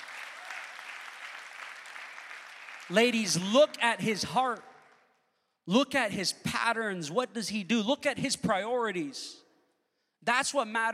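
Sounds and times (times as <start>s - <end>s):
a few people clapping at a live talk: 0.0s - 5.2s
speech: 2.9s - 4.7s, 5.6s - 9.4s, 10.2s - 10.9s.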